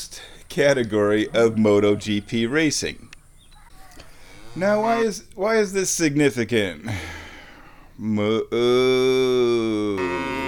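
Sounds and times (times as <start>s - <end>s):
speech: 0.0s - 3.1s, 4.6s - 7.2s, 8.0s - 10.3s
cow mooing: 9.8s - 10.4s.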